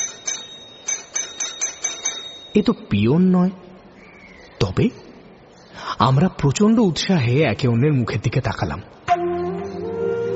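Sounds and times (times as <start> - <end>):
doorbell ringing: 0.0 - 2.6
speech: 2.6 - 3.7, 4.6 - 5.0, 6.0 - 9.0.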